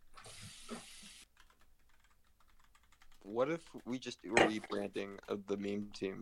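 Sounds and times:
tap water running while washing hands in a bathroom: 0.1s - 1.2s
speech: 3.3s - 6.2s.

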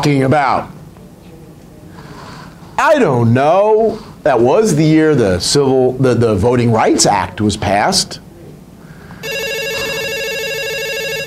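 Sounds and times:
speech: 0.0s - 0.8s, 2.8s - 8.2s
faint noise: 0.0s - 11.2s
telephone with bright trilling electronic ring: 9.2s - 11.2s.

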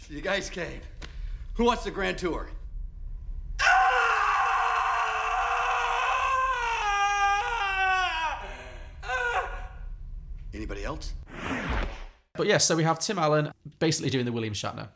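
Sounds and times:
speech: 0.1s - 1.0s, 1.6s - 2.6s, 10.5s - 11.6s, 12.4s - 14.9s
man screaming in a film clip: 3.6s - 9.8s.

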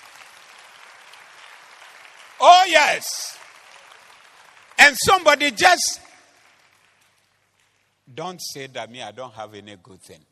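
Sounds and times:
audience clapping: 0.0s - 8.0s
speech: 2.4s - 3.4s, 4.8s - 6.0s, 8.2s - 10.2s.

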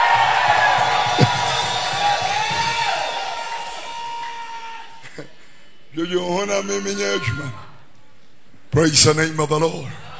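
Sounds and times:
audience screaming and cheering: 0.0s - 5.1s
speech: 6.0s - 7.7s, 8.7s - 10.0s.

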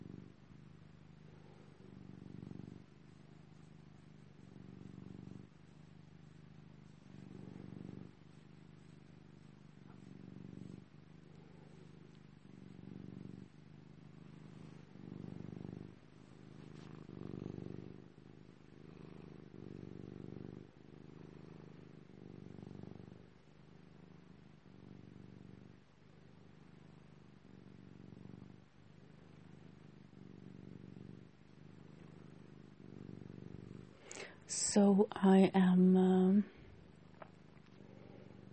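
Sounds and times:
cat purring: 0.0s - 38.5s
speech: 34.5s - 36.6s.

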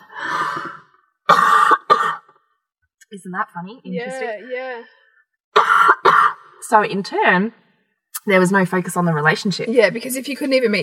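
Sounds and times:
person coughing and clearing throat: 1.3s - 2.4s, 5.5s - 6.5s
speech: 3.1s - 5.0s, 6.6s - 7.6s, 8.2s - 10.8s.

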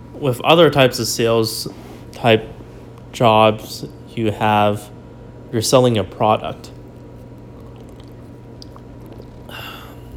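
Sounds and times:
low hum: 0.0s - 10.1s
speech: 0.2s - 4.9s, 5.5s - 6.8s
sipping and swallowing coconut water: 6.8s - 10.1s
slurp: 7.4s - 10.1s.

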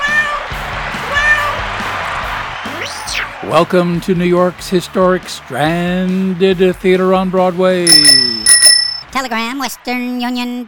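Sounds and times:
cat meowing: 0.0s - 1.7s
speech: 3.2s - 8.5s, 9.1s - 10.6s.

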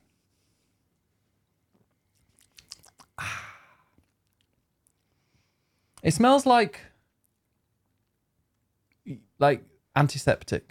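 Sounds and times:
slurping sip of a drink: 2.1s - 3.2s
mouth clicks: 2.2s - 4.6s
speech: 6.0s - 6.9s, 9.4s - 10.7s.

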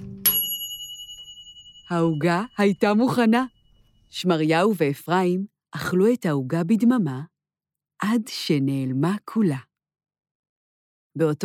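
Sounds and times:
oven timer bell ding: 0.0s - 4.4s
speech: 1.9s - 7.3s, 8.0s - 9.7s, 11.2s - 11.4s.

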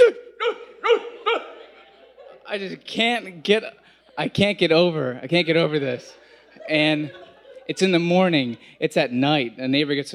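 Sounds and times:
dog barking in short sharp yaps: 0.4s - 1.6s
laughter: 0.6s - 9.2s
speech: 2.5s - 10.1s.

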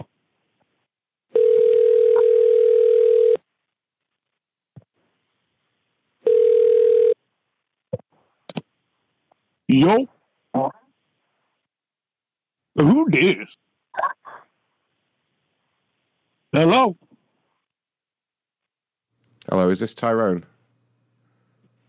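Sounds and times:
long steady telephone ringing tones: 1.3s - 3.4s, 6.2s - 7.2s
speech: 9.8s - 10.1s, 12.8s - 13.6s, 16.6s - 17.0s, 19.7s - 20.5s.

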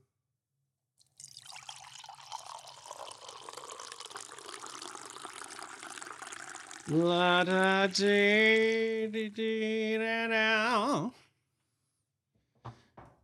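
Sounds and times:
liquid pouring into a glass: 1.1s - 8.9s
speech: 6.9s - 11.2s.

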